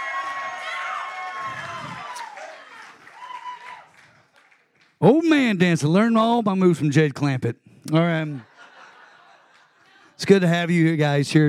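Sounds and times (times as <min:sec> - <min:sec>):
whoops and shouts: 0:00.0 - 0:04.1
crowd cheering and clapping: 0:00.0 - 0:05.4, 0:08.5 - 0:10.2
speech: 0:05.0 - 0:08.5, 0:10.2 - 0:11.4
laughter: 0:08.2 - 0:10.5.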